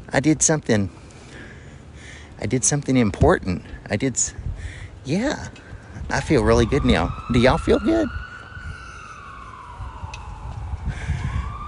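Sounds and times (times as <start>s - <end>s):
low rumble of street traffic: 0.0s - 11.6s
speech: 0.1s - 1.0s, 2.4s - 8.2s
ambulance siren wailing: 5.4s - 11.6s.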